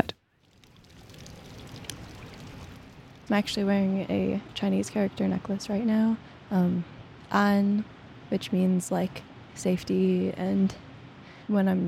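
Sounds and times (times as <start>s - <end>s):
outdoor water fountain splashing outside a library: 0.4s - 3.3s
speech: 3.3s - 10.8s, 11.5s - 11.8s.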